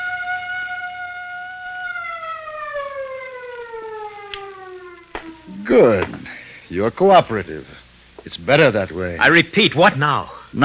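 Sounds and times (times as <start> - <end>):
siren wailing: 0.0 - 6.0
speech: 5.7 - 10.6.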